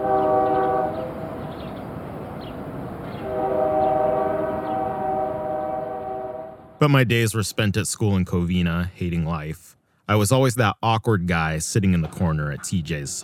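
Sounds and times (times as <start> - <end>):
train horn blasts in an industry train yard in La Puente: 0.0 - 1.7, 3.2 - 6.8
rolling rail cars rumbling in an industry train yard in La Puente: 0.0 - 7.4
speech: 6.8 - 13.2.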